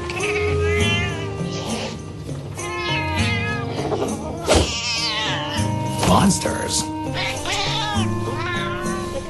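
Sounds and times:
cat meowing and yowling: 0:00.0 - 0:02.0, 0:02.6 - 0:05.8, 0:07.1 - 0:09.2
music: 0:00.0 - 0:09.2.

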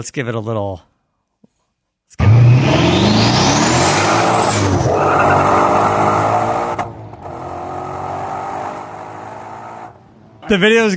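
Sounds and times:
speech: 0:00.0 - 0:00.9, 0:10.5 - 0:10.9
race car rising turbo whine: 0:02.2 - 0:10.0
race car engine roaring: 0:02.2 - 0:10.6.

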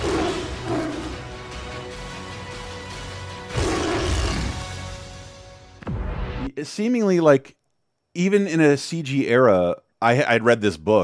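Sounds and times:
tiger roaring and growling: 0:00.0 - 0:01.3, 0:03.5 - 0:04.7
speech: 0:06.6 - 0:07.6, 0:08.2 - 0:11.0.

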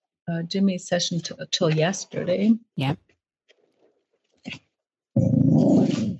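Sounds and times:
speech: 0:00.3 - 0:03.0, 0:04.4 - 0:04.6
dog growling: 0:05.2 - 0:06.1.

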